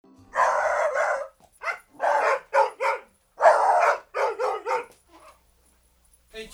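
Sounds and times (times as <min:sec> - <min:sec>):
dog barking: 0:00.3 - 0:05.5.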